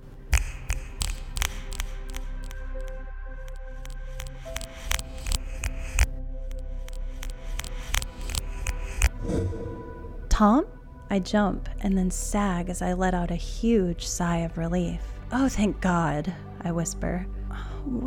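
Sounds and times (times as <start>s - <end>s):
sharp clicks in a regular rhythm: 0.3s - 9.2s
speech: 10.4s - 18.0s.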